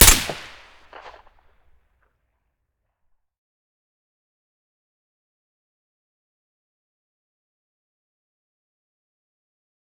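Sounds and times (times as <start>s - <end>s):
SVD rifle shot with silencer: 0.0s - 1.2s.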